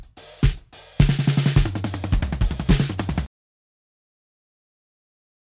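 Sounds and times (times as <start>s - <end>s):
modern disco music: 0.3s - 3.3s.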